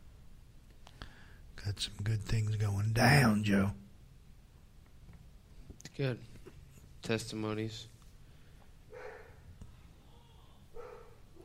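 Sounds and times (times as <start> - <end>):
steady low hum: 0.0 - 11.4
speech: 1.6 - 3.8, 6.0 - 6.4, 7.0 - 7.9
faint dog barks from downstairs: 8.9 - 11.4.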